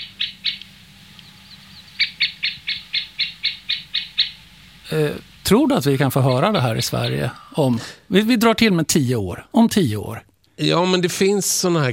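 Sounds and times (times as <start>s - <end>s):
middle spotted woodpecker calling at its nesting site: 0.0s - 7.6s
low steady hum: 0.0s - 11.2s
speech: 4.9s - 11.9s.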